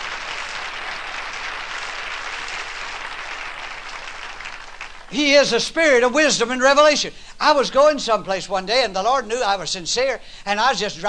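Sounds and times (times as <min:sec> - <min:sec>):
room full of people clapping hands: 0:00.0 - 0:05.1
speech: 0:05.1 - 0:11.0.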